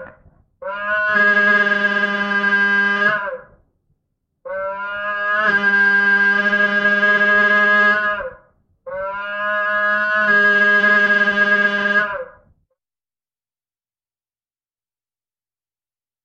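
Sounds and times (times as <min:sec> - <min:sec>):
car horn in form of cow mooing: 0:00.7 - 0:03.4, 0:04.5 - 0:08.3, 0:09.0 - 0:12.3.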